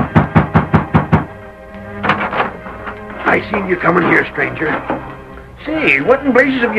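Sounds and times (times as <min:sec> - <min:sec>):
knocking on the wooden door of a ranch house: 0:00.0 - 0:01.4
softer thumps: 0:00.0 - 0:05.1
speech: 0:03.3 - 0:06.7.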